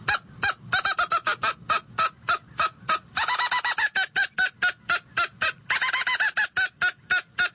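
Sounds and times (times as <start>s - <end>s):
mouth-blown squirrel call imitating an angry squirrel's barks: 0.1s - 7.5s.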